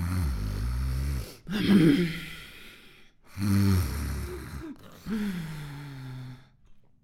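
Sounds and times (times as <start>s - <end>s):
voice imitating an old pustule-covered toad snoring: 0.0s - 2.2s, 3.3s - 5.1s.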